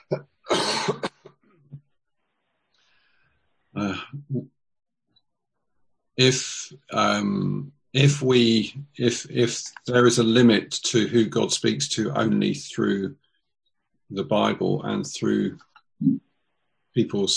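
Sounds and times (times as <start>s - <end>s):
person coughing harshly: 0.0s - 1.3s
speech: 6.2s - 13.2s, 14.1s - 16.2s, 17.0s - 17.3s.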